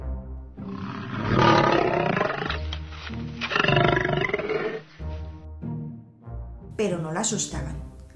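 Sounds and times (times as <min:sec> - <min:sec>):
lion roaring: 0:00.6 - 0:02.8, 0:03.4 - 0:05.0
speech: 0:06.8 - 0:07.9.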